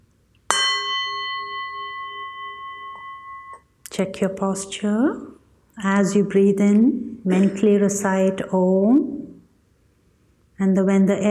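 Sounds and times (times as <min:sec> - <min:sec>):
meditation gong struck to begin a guided meditation: 0:00.5 - 0:03.7
speech: 0:04.0 - 0:09.2, 0:10.6 - 0:11.2.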